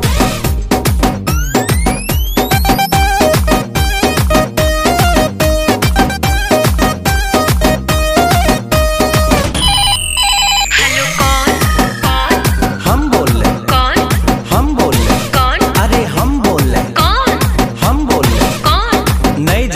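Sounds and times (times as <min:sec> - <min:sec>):
loud upbeat music track with pounding rhythmic beat: 0:00.0 - 0:19.7
telephone ringing with rapid electronic trill: 0:09.6 - 0:12.7.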